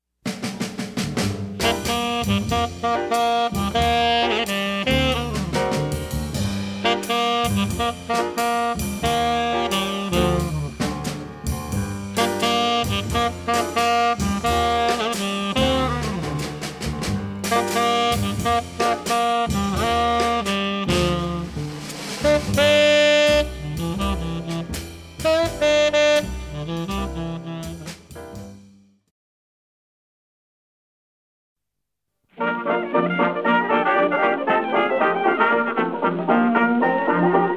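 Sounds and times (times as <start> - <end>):
jazz instruments playing: 1.0 - 28.6, 32.4 - 37.5.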